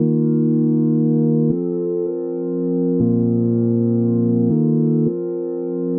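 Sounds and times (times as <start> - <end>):
mellow keyboard chords in G minor: 0.0 - 5.9.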